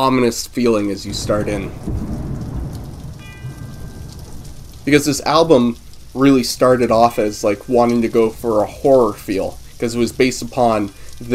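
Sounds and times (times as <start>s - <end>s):
speech: 0.0s - 2.2s, 4.8s - 11.3s
steady dense rain hissing: 0.0s - 11.3s
low rumble: 1.0s - 7.2s
bell tone at the start of a song: 3.2s - 4.4s.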